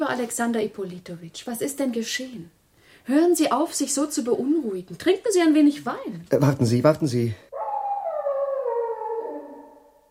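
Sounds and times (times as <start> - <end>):
speech: 0.0 - 7.5
dog howling mournfully: 7.5 - 10.0.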